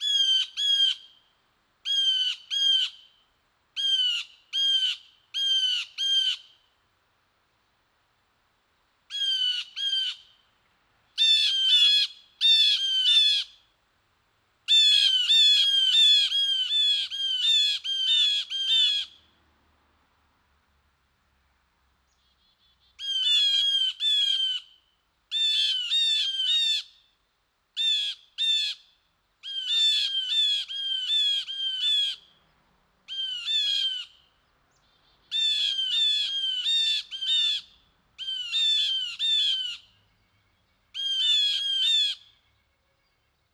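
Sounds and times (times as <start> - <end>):
blue jay calling: 0.0 - 3.2, 3.8 - 6.7, 9.1 - 10.4, 11.2 - 13.7, 14.7 - 19.2, 22.1 - 27.1, 27.8 - 32.4, 33.1 - 40.0, 40.9 - 42.5.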